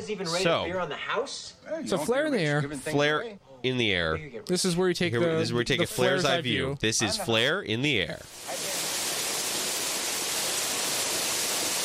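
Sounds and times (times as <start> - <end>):
speech: 0.0 - 8.7
loud constant rushing hiss of a waterfall: 8.3 - 11.8.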